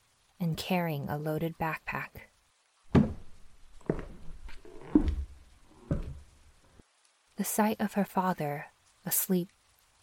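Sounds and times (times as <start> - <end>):
speech: 0.5 - 2.3, 7.4 - 9.6
soft footsteps of a girl padding on a wooden floor: 2.9 - 6.8.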